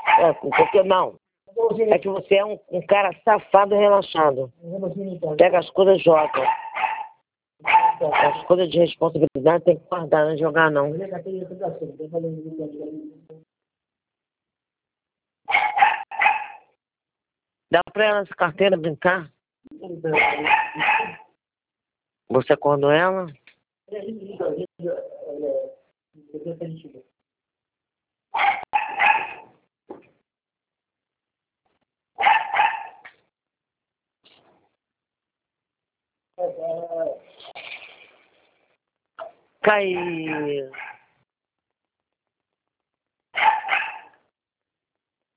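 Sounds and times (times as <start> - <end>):
dog barking: 0.0 - 1.0, 6.2 - 8.5, 15.5 - 16.7, 20.1 - 21.4, 28.3 - 29.5, 32.2 - 33.1, 39.9 - 41.1, 43.3 - 44.2
speech: 0.2 - 6.6, 8.0 - 13.5, 17.7 - 21.2, 22.3 - 27.1, 39.6 - 40.9.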